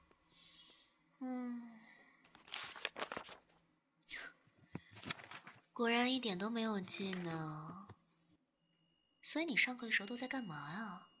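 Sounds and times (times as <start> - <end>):
speech: 1.2 - 1.7, 5.8 - 7.8, 9.3 - 11.1
crisp paper pages of a class-notes notebook flipping: 2.3 - 3.6, 4.7 - 5.7.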